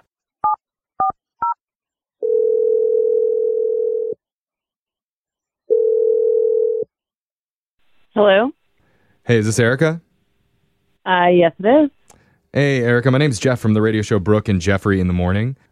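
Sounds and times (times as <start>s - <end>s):
telephone ringing tones: 2.2s - 4.2s, 5.7s - 6.9s
speech: 8.2s - 8.6s, 9.3s - 10.1s, 11.1s - 15.7s.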